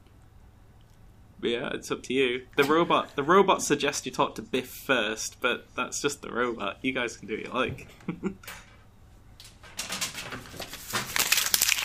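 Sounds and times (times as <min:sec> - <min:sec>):
speech: 0:01.4 - 0:08.7
fancy paper crinkling and rustling: 0:09.8 - 0:11.8.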